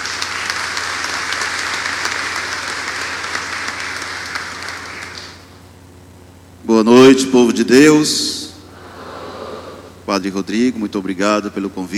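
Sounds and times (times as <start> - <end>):
crowd applauding at a church festival: 0.0 - 5.5
speech: 6.7 - 8.4, 10.1 - 11.9.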